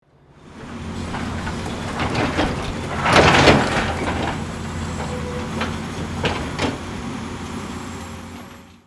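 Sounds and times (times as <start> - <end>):
excavator construction vehicle bucket dump: 0.6 - 7.3.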